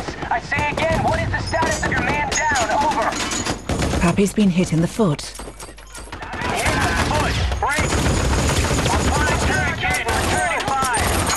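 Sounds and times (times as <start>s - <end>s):
rapid gunfire in a combat scene: 0.0s - 4.2s, 6.1s - 11.3s
speech: 0.3s - 1.8s, 4.0s - 5.4s
people shouting: 6.1s - 7.5s, 8.7s - 11.1s.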